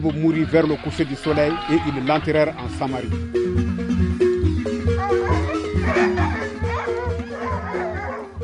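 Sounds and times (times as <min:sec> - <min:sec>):
speech: 0:00.0 - 0:03.9
several dogs barking and yelping: 0:04.7 - 0:08.4.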